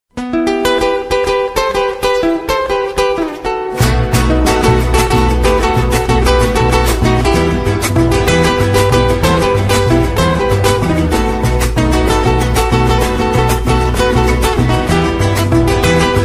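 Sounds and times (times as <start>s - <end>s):
guitar dance tango ringtone: 0.1s - 16.2s.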